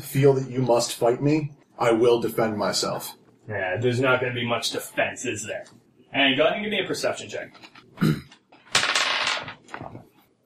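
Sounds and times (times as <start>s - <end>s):
speech: 0.1s - 8.2s
dice clattering across a hard tabletop in a tabletop game: 8.5s - 10.1s.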